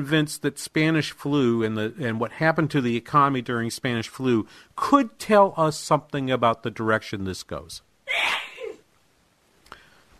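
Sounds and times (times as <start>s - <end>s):
speech: 0.0s - 7.9s
person sneezing: 8.1s - 8.8s
faint click: 9.6s - 9.9s.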